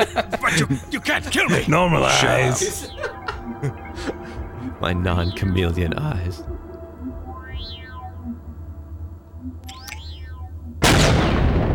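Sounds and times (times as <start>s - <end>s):
laughter: 0.0s - 1.7s, 2.4s - 4.4s
speech: 0.1s - 4.2s, 4.8s - 6.6s
soft sweeping electronic chirps in a video game: 1.1s - 11.2s
low hum: 2.0s - 11.7s
video game gunshot: 10.8s - 11.7s.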